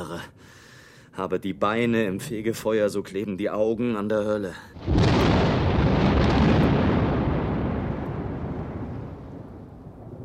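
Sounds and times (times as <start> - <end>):
speech: 1.2 - 4.9
thunder of an approaching thunderstorm rumbling: 4.8 - 10.2.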